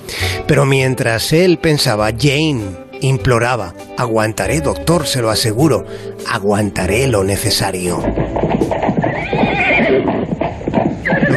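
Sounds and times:
speech: 0.5s - 9.0s
horse hooves galloping: 4.5s - 11.3s
horse whinnying: 8.0s - 11.3s.

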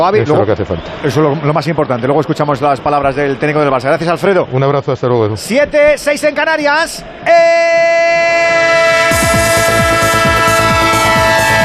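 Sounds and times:
speech: 0.0s - 8.2s
train whistle chord in a radio jingle: 7.3s - 11.6s.

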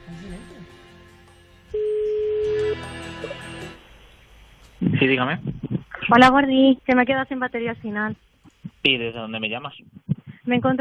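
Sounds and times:
phone line tone before call is answered: 1.7s - 3.0s
speech: 5.0s - 8.2s, 8.8s - 9.9s, 10.5s - 10.7s.

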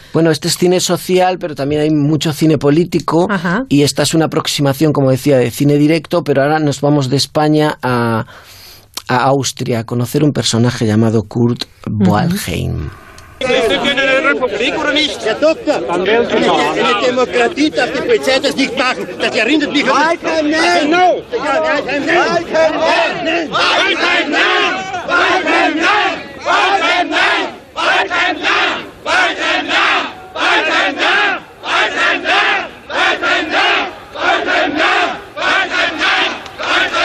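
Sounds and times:
speech: 0.1s - 27.2s
large crowd chanting a name in unison in a film excerpt: 12.2s - 37.0s
constant roar of massed voices: 12.9s - 37.0s.

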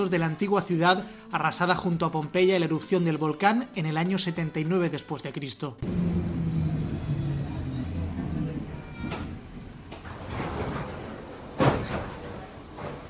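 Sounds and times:
speech: 0.0s - 6.2s
commuter train doors opening at a station: 5.8s - 13.0s
knocks and clunks: 8.2s - 13.0s.

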